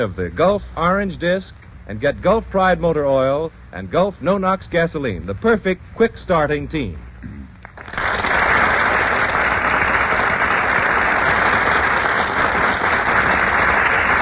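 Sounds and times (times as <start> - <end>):
speech: 0.0 - 7.4
studio audience applause: 7.6 - 14.2.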